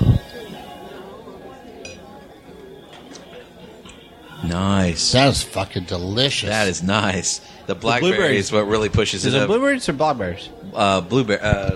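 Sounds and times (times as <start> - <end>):
low murmur of chatter: 0.0 - 11.7
glasses clinking in a toast during a tasting: 0.2 - 4.1
speech: 4.4 - 11.7.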